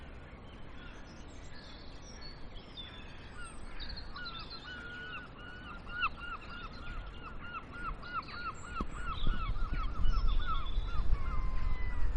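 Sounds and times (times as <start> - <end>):
crow calling: 3.2 - 12.1.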